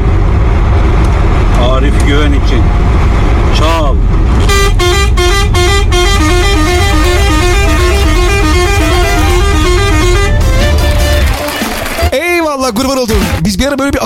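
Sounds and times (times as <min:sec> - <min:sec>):
steady bus engine rumble: 0:00.0 - 0:14.0
speech: 0:02.1 - 0:02.8, 0:12.6 - 0:14.0
bus musical novelty tune horn: 0:04.4 - 0:12.1.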